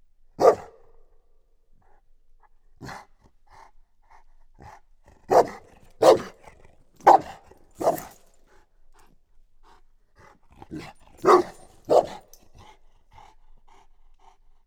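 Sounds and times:
chained dog barking: 0.4 - 0.9, 5.3 - 8.2, 10.7 - 12.4.

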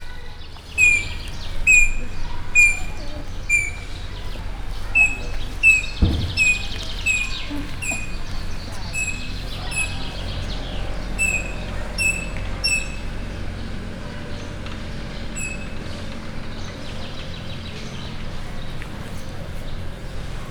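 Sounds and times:
rosella parrot at Miskolc zoo: 0.7 - 10.5, 11.2 - 13.1.

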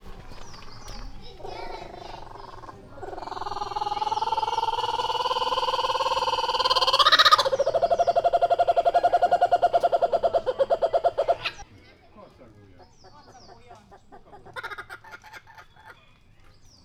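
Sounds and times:
captive laughing kookaburra laughing call at a zoo: 1.4 - 11.6.

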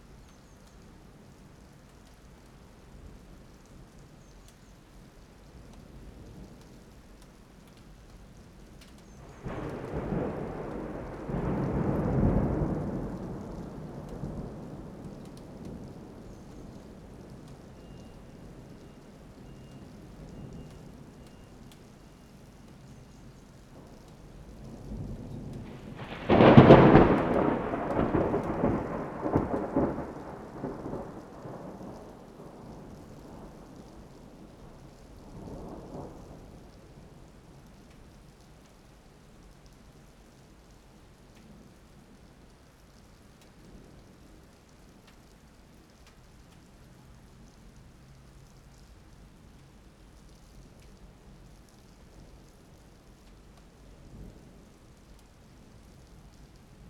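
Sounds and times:
medium and large thunder: 9.2 - 18.2, 23.8 - 37.2.

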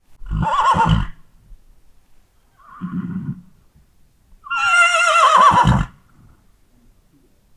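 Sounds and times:
horses nickering in a farmyard: 0.2 - 1.4, 2.6 - 3.8, 4.4 - 6.9.

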